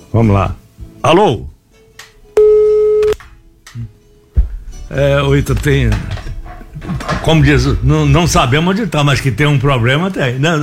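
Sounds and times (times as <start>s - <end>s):
speech: 0.2s - 1.5s, 4.9s - 6.2s, 6.8s - 10.6s
telephone busy tone after a dropped call: 2.4s - 3.2s.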